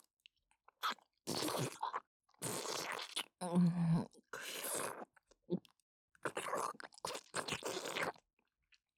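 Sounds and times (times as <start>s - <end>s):
wet chewing and crunching of rich-flavoured food eaten greedily: 0.7s - 3.3s, 4.5s - 8.2s.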